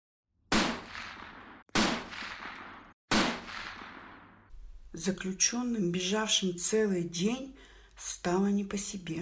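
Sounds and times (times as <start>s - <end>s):
gunshots fired into the air with rolling echo: 0.5s - 4.5s
speech: 5.0s - 9.2s.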